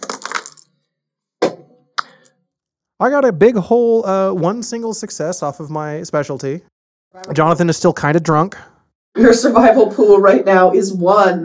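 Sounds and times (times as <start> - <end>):
dice clattering on a hard surface: 0.0 - 0.7
speech: 3.0 - 11.4.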